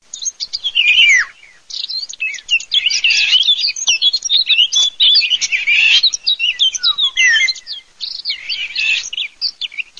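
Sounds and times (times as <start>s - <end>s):
golden oriole singing: 0.0s - 9.9s.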